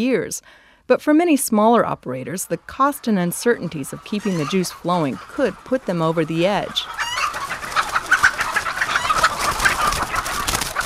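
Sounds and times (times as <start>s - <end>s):
speech: 0.0s - 7.0s
large flock of white leghorn hens clucking at an egg ranch: 1.6s - 10.8s.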